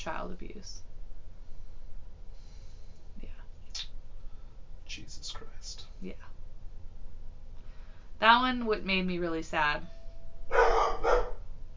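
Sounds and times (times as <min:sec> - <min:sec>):
speech: 0:00.0 - 0:00.9, 0:05.0 - 0:06.4, 0:08.2 - 0:11.2
low hum: 0:00.0 - 0:11.7
harsh mid-pitched dog barks: 0:10.5 - 0:11.5.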